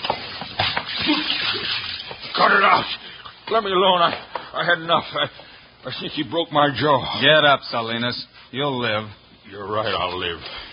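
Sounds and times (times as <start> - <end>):
water thrown from a pitcher splashing onto a man: 0.1 - 3.0
speech: 2.4 - 10.6.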